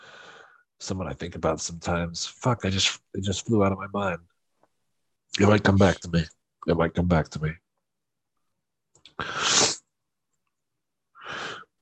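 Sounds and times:
speech: 0:00.9 - 0:04.3, 0:05.4 - 0:07.6
person sneezing: 0:09.2 - 0:09.9.

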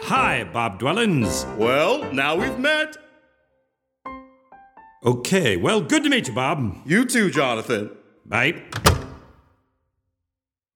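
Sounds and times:
speech: 0:00.1 - 0:03.0, 0:05.0 - 0:08.9
door latch click: 0:08.7 - 0:09.4.

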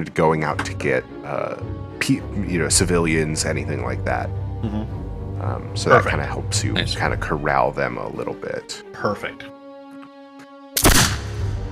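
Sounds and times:
speech: 0:00.0 - 0:09.6
single loud gunshot with booming echo: 0:10.8 - 0:11.6.

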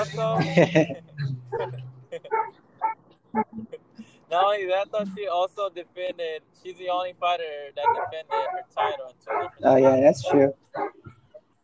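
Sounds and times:
speech: 0:00.0 - 0:01.1, 0:04.3 - 0:10.9
laughter: 0:00.0 - 0:02.5, 0:03.6 - 0:09.1
dog barking: 0:01.5 - 0:03.0, 0:07.8 - 0:11.1.

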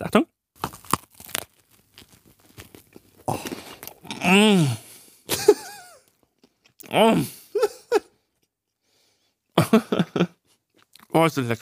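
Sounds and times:
speech: 0:00.0 - 0:00.3, 0:11.3 - 0:11.6
soft scattered crackles of chewing a chilled snack: 0:00.6 - 0:04.2, 0:10.5 - 0:11.2
crunchy bites into a chilled snack: 0:00.6 - 0:04.3
laughter: 0:05.3 - 0:06.0, 0:07.6 - 0:08.1, 0:09.6 - 0:10.4.

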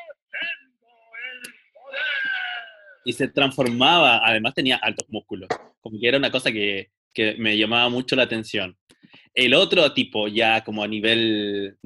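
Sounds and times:
cartoon hero shouting battle yell: 0:00.0 - 0:03.1
speech: 0:03.0 - 0:11.8.

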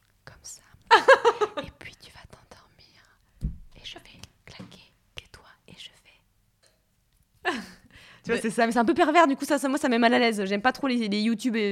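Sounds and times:
person whispering softly in an ASMR style: 0:00.2 - 0:00.8, 0:01.6 - 0:03.2, 0:03.8 - 0:06.3
laughter: 0:00.9 - 0:01.6
speech: 0:08.3 - 0:11.7.

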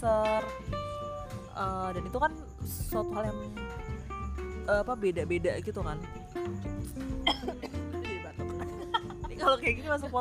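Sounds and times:
speech: 0:00.0 - 0:00.8, 0:01.6 - 0:03.9, 0:04.7 - 0:07.8, 0:09.4 - 0:10.1
person coughing: 0:07.2 - 0:07.9
laughter: 0:08.4 - 0:09.8.

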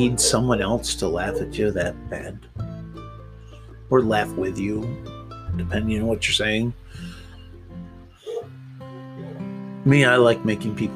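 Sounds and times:
dogs barking in the background: 0:00.0 - 0:01.9, 0:08.2 - 0:09.6
speech: 0:00.0 - 0:02.6, 0:03.9 - 0:07.1, 0:09.8 - 0:10.9.

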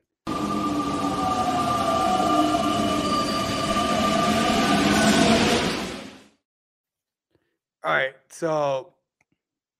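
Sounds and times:
sustained metallic whining tones of a train: 0:00.3 - 0:06.2
grinding rail noise: 0:00.3 - 0:06.3
train sound effect rumbling: 0:00.3 - 0:06.3
speech: 0:07.9 - 0:08.9.

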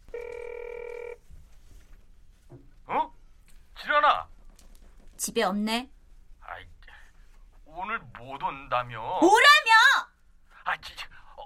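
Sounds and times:
ringback tone of an outgoing phone call: 0:00.1 - 0:01.2
faint soft knock: 0:02.4 - 0:02.8
speech: 0:05.2 - 0:06.0, 0:08.3 - 0:09.6.

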